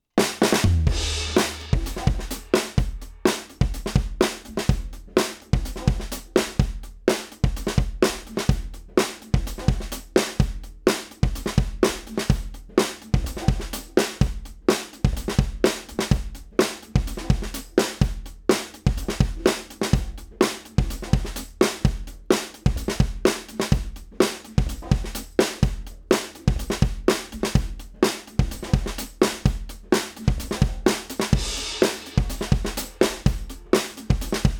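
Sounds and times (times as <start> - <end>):
drum kit recorded with Austrian Audio OC18 microphone and FET compressor: 0.2 - 34.5.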